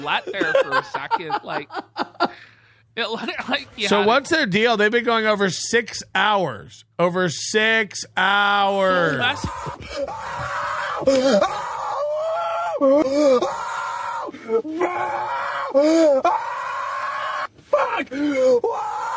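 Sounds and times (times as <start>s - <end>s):
laughter: 0.0s - 2.5s
speech: 0.0s - 11.7s, 12.8s - 13.6s, 14.5s - 16.5s, 18.0s - 19.0s
man in his car yelling and groaning: 8.2s - 19.1s.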